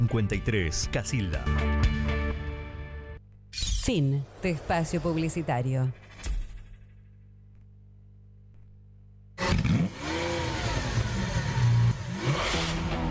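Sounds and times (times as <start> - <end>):
speech: 0.0 - 2.2, 3.9 - 6.0
car engine starting and revving: 9.4 - 13.0.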